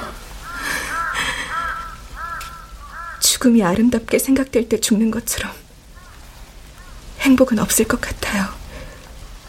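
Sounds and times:
bird calling: 0.4 - 3.4, 5.9 - 7.1
speech: 3.4 - 5.6, 7.3 - 8.5.

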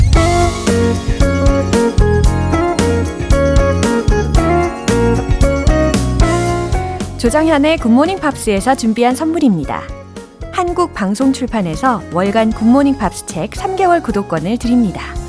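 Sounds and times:
soul-pop song with beat, bass, chords and horns: 0.1 - 7.6
speech: 7.3 - 10.0, 10.6 - 15.2.

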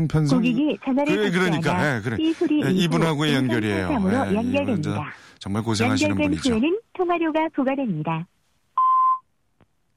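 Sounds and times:
speech: 0.0 - 8.4
electronic voicemail beep on a phone call: 8.8 - 9.2.

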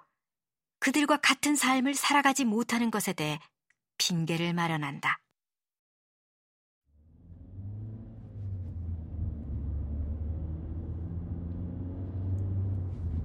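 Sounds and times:
speech: 0.8 - 5.2
heavy car engine rumble speeding up on the Brooklyn-Queens Expressway: 7.0 - 13.2
road noise: 7.0 - 13.2.

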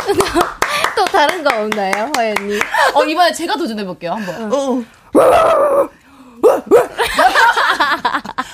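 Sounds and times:
speech: 0.1 - 7.3
person imitating a dog whining and yelping: 5.2 - 7.0
laughter: 6.9 - 8.5.

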